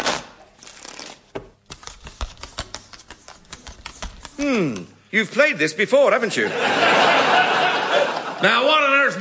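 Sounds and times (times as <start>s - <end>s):
deck of playing cards being shuffled for poker: 0.0s - 4.9s
playing cards being cut and squared: 1.7s - 4.9s
speech: 4.4s - 7.4s, 8.4s - 9.1s
laughter: 6.3s - 8.7s.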